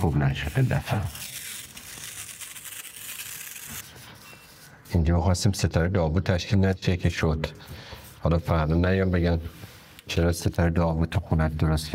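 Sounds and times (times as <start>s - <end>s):
speech: 0.0s - 1.3s, 5.0s - 11.9s
adhesive tape pulled and torn off a roll in a house: 0.5s - 3.9s.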